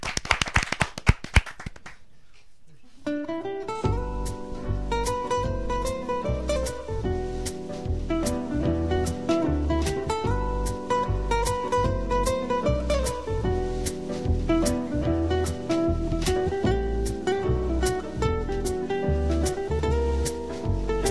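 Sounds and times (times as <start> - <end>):
small group clapping: 0.0 - 2.1
steady music track: 3.1 - 21.0.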